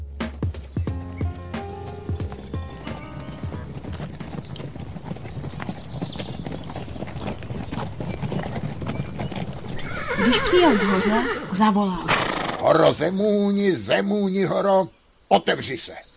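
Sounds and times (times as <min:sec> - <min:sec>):
hooves of a horse pulling a cart clip-clopping: 0:00.1 - 0:12.5
speech: 0:10.3 - 0:16.1.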